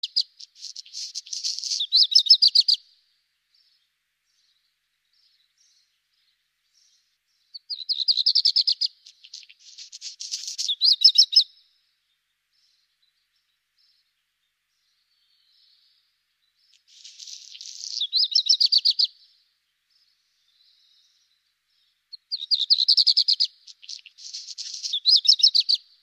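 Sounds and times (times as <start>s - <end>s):
black redstart calling: 0.0s - 2.8s, 7.6s - 11.5s, 16.7s - 19.2s, 22.2s - 25.8s.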